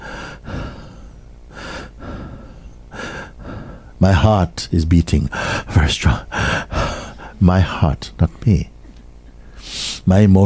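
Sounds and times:
heavy labored breathing close to the microphone: 0.0 - 4.0, 5.3 - 7.4, 9.3 - 10.1
speech: 4.0 - 6.6, 7.4 - 8.7, 10.0 - 10.4.

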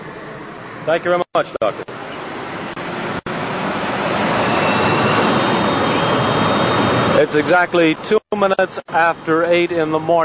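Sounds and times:
Learjet air-rescue plane taking off down the runway at Zurich Airport: 0.0 - 8.0
speech: 0.8 - 2.0, 7.2 - 10.2.

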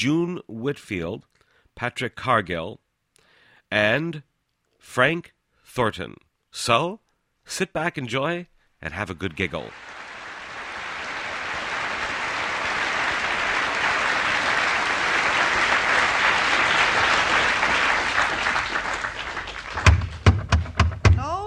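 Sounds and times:
speech: 0.0 - 2.8, 3.7 - 10.0
crowd applauding: 9.4 - 21.4
sharp loud knocks on a wooden door: 19.8 - 21.2.

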